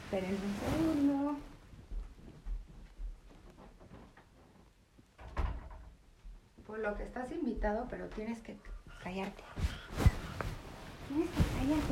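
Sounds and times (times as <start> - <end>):
quiet shuffling and handling noises: 0.0 - 5.1, 9.1 - 11.8
speech: 0.1 - 1.5, 6.7 - 10.0, 11.1 - 11.8
door pushed shut with a solid thud: 5.2 - 6.0.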